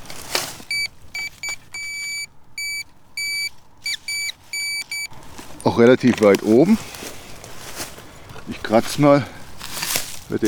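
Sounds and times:
metal detector beeping on non-ferrous metal: 0.7s - 5.2s
speech: 5.8s - 7.0s, 8.7s - 9.4s, 10.3s - 10.4s.

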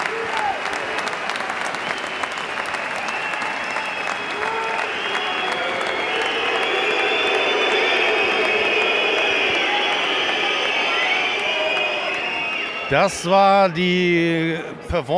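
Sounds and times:
large stadium crowd roaring: 0.0s - 15.1s
shrill whistles from stadium crowd: 1.6s - 13.1s
speech: 12.9s - 15.1s.

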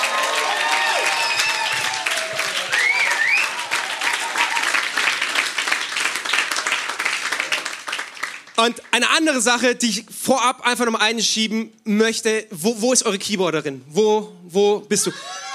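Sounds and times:
crowd whooping and cheering: 0.0s - 5.5s, 15.1s - 15.5s
audience applause from a large crowd: 0.0s - 8.9s
speech: 8.6s - 15.4s.

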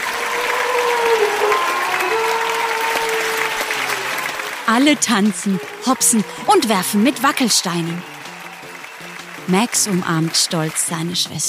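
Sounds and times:
howl-like voices and whoops: 0.0s - 8.7s
large crowd cheering and clapping: 0.0s - 11.4s
speech: 4.7s - 8.2s, 9.5s - 11.4s.

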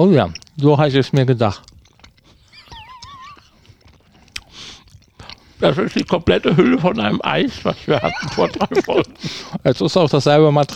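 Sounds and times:
speech: 0.0s - 1.7s, 5.6s - 10.7s
chewing sticky dango rice dumpling: 0.0s - 10.7s
laughter: 2.5s - 3.6s, 5.6s - 9.8s.

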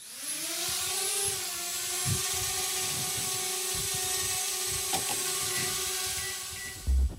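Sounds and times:
quadcopter drone propellers buzzing with a high harmonic whine: 0.0s - 7.0s.

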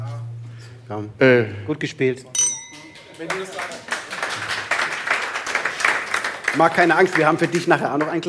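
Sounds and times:
lively room noise: 0.0s - 8.2s
speech: 0.9s - 2.4s, 3.2s - 4.0s, 6.6s - 8.2s
glasses clinking in a toast: 2.4s - 3.6s
people clapping: 2.8s - 8.2s.

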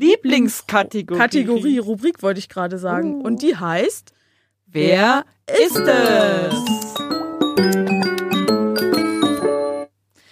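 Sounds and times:
speech: 0.0s - 7.8s
short bright podcast segment jingle of ringing chimes: 5.7s - 9.9s.

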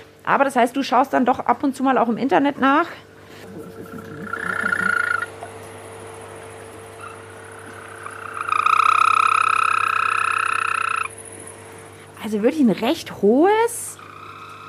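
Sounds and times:
faint constant hum: 0.0s - 14.6s
speech: 0.2s - 3.9s, 12.2s - 13.9s
European green toad trilling: 3.4s - 5.4s, 7.0s - 11.4s, 13.9s - 14.6s.

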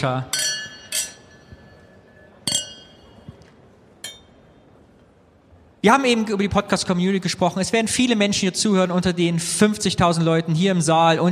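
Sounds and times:
speech: 0.0s - 0.4s, 5.8s - 11.3s
champagne glasses clinking in a toast: 0.2s - 3.4s, 4.0s - 4.4s.

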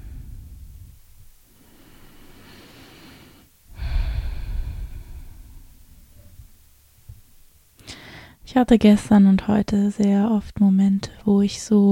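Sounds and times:
slow deep breathing: 0.0s - 6.5s, 7.8s - 8.4s
speech: 8.5s - 11.9s.

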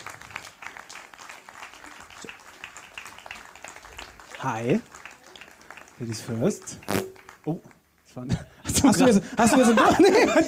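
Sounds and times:
audience applause: 0.0s - 7.6s
speech: 4.4s - 5.0s, 6.0s - 10.4s
laughter: 8.7s - 10.4s.

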